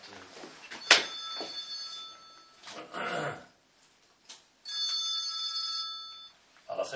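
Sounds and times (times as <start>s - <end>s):
phone ringing with a bright electronic ringtone: 0.8s - 2.7s, 4.6s - 6.4s.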